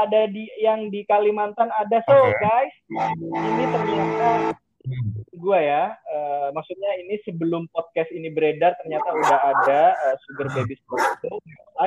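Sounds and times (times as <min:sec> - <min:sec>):
speech: 0:00.0 - 0:11.8
dog barking and yelping: 0:09.0 - 0:11.3.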